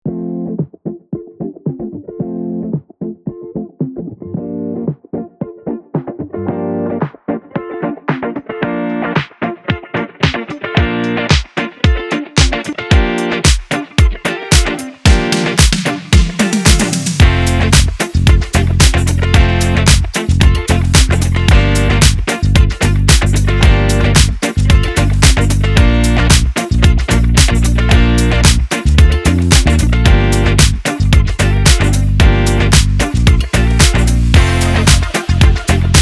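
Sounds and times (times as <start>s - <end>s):
disco funk music: 0.0s - 35.9s.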